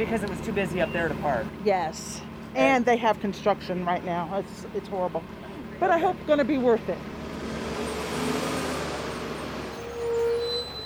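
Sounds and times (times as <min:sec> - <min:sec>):
speech: 0:00.0 - 0:07.2
shuttle bus engine rumbling: 0:00.0 - 0:10.8
traffic noise: 0:00.0 - 0:10.8
shuttle bus brake squeal: 0:07.5 - 0:10.8.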